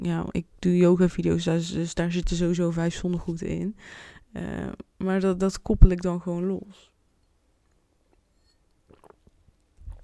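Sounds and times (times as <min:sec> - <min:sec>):
speech: 0:00.0 - 0:06.9
person sipping water: 0:08.8 - 0:10.0
soft wet mouth sounds: 0:08.9 - 0:10.0.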